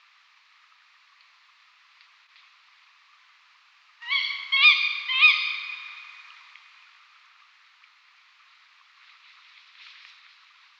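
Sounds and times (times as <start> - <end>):
female tawny owl calling: 4.0 - 6.2.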